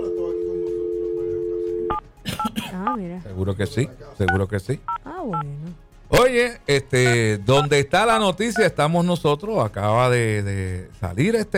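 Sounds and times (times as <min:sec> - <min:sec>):
telephone tone as a call is placed: 0:00.0 - 0:02.0
speech: 0:02.8 - 0:11.5.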